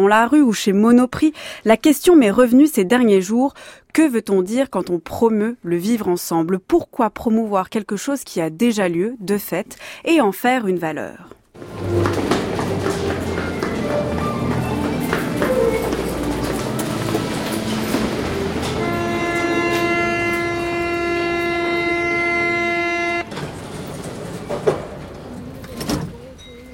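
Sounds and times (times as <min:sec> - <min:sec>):
speech: 0:00.0 - 0:11.9
metro train rumbling along the rails: 0:11.6 - 0:26.3.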